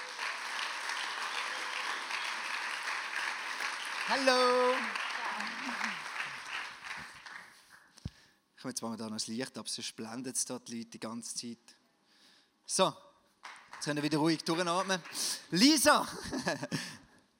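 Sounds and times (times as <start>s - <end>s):
audience applause: 0.0s - 7.7s, 13.4s - 16.1s
speech: 4.1s - 5.9s, 8.6s - 11.8s, 12.7s - 13.1s, 13.8s - 16.9s
laughter: 16.0s - 17.0s.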